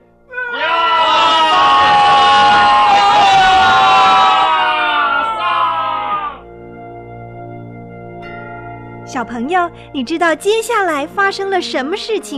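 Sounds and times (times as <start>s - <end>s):
large group of warriors shouting together on command: 0.3s - 6.4s
speech: 9.2s - 12.3s.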